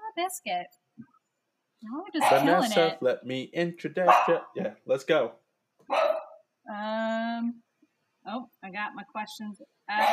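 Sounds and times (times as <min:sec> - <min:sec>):
speech: 0:00.2 - 0:01.1, 0:01.8 - 0:06.1, 0:06.7 - 0:07.6, 0:08.2 - 0:10.1
dog barking: 0:02.2 - 0:02.7, 0:04.0 - 0:04.6, 0:05.9 - 0:06.4, 0:10.0 - 0:10.1.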